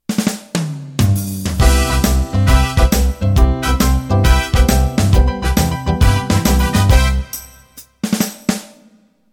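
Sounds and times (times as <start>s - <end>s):
1950s rock and roll intro: 0.2s - 7.4s.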